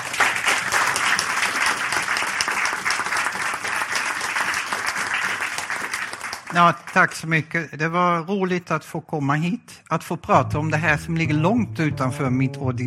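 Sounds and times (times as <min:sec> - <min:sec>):
room full of people applauding: 0:00.0 - 0:07.3
speech: 0:06.5 - 0:12.8.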